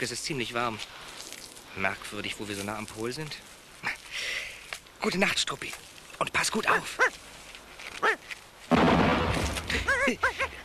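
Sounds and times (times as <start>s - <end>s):
speech: 0.0s - 1.1s, 1.8s - 7.2s, 10.1s - 10.6s
loud cannon-like detonation: 8.7s - 9.8s.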